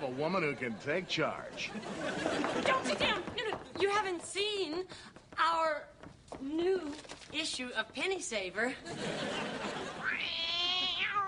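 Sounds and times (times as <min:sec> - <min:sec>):
speech: 0:00.2 - 0:10.4
laughter: 0:00.3 - 0:03.3, 0:08.8 - 0:10.1
male house cat meowing: 0:10.0 - 0:11.2.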